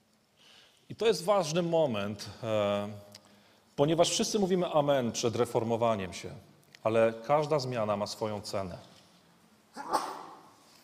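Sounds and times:
speech: 0.9 - 3.1, 3.8 - 8.9
single sharp sneeze: 9.7 - 10.7.

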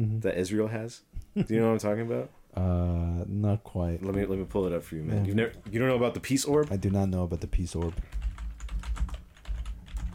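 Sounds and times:
speech: 0.0 - 8.2
typing on a computer keyboard: 4.1 - 10.1.

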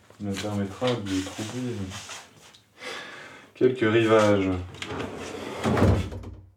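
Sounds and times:
speech: 0.2 - 2.2, 3.6 - 6.0
front door opening or closing with a low thud: 5.6 - 6.5.

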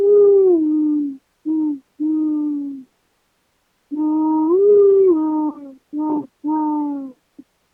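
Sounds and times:
person's voice imitating the hooting call of a bird heard in Los Angeles: 0.0 - 2.9, 3.9 - 7.2.

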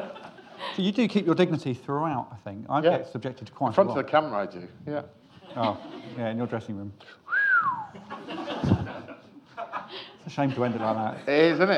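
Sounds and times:
laughter: 0.0 - 0.9, 5.4 - 6.4, 7.8 - 11.7
speech: 0.8 - 7.3, 10.3 - 11.7
person's suggestive wolf whistle: 7.3 - 7.9.

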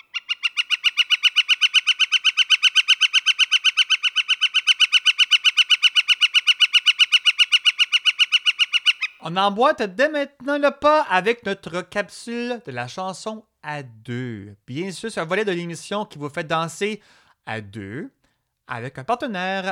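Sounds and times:
woodpecker calling: 0.0 - 10.6
speech: 9.2 - 19.7.

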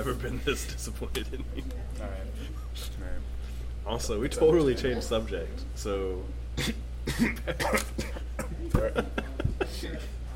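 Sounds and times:
speech: 0.1 - 10.2
person coughing with food in mouth: 6.6 - 9.0
throat clearing: 6.6 - 9.0
laughter: 7.2 - 10.2.

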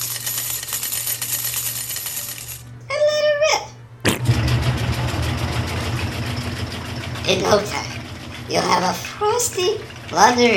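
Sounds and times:
coins tossed into a laundry machine: 0.0 - 2.6
low steady hum: 1.2 - 10.5
speech: 7.3 - 7.9, 8.5 - 10.5.

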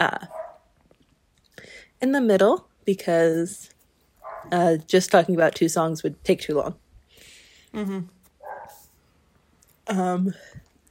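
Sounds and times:
speech: 0.0 - 0.4, 2.0 - 3.8, 4.4 - 6.8, 7.7 - 8.2, 9.9 - 10.6
faint dog bark: 0.3 - 0.7, 4.2 - 4.6, 8.4 - 8.8.

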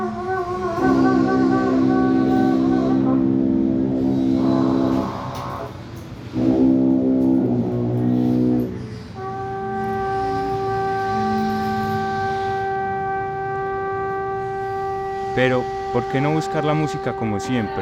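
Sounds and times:
musical saw thin pure wavering tone: 0.0 - 5.8, 6.4 - 17.8
clarinet holding long notes: 0.0 - 17.8
trumpet holding long notes: 0.0 - 17.8
tuba holding long notes: 0.0 - 17.8
speech: 15.4 - 17.8.

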